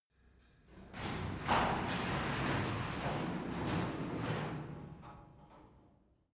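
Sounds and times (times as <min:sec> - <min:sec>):
garage door opening heard from inside: 0:00.8 - 0:05.5.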